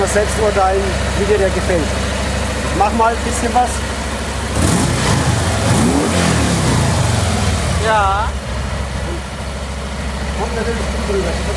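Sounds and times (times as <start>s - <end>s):
speech: 0.1s - 2.2s, 2.8s - 3.9s, 7.9s - 8.4s, 10.4s - 11.5s
car engine revving with deep original exhaust: 2.6s - 11.5s.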